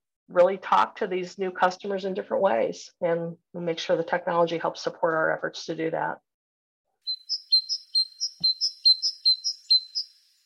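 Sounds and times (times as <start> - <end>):
speech: 0.3 - 6.3
bird chirping: 7.0 - 10.4.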